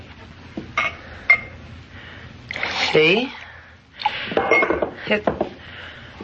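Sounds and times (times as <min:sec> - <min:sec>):
glass clinking against a water pitcher on a table: 0:00.8 - 0:01.5, 0:04.4 - 0:04.9
speech: 0:03.0 - 0:03.4, 0:05.1 - 0:05.4.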